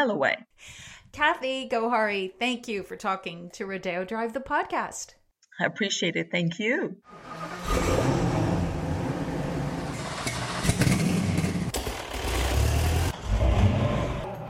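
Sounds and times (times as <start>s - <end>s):
speech: 0.0s - 8.2s
collector car engines revving: 7.1s - 14.4s.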